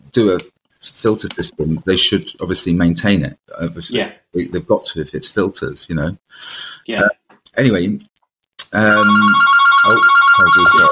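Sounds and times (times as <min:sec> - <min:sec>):
speech: 0:00.2 - 0:10.9
telephone ringing with a bright electronic trill: 0:08.8 - 0:10.9.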